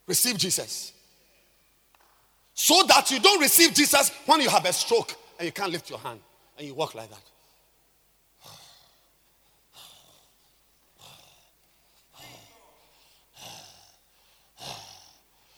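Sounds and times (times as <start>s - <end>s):
speech: 0.1s - 1.0s, 2.6s - 7.3s
voice imitating heavy labored breathing: 8.4s - 15.5s.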